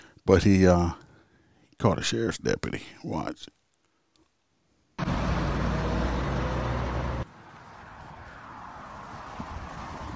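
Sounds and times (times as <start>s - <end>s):
speech: 0.2s - 1.0s, 1.8s - 3.6s
car passing on a street in a school zone: 5.0s - 10.1s
steady traffic hum: 5.0s - 10.1s.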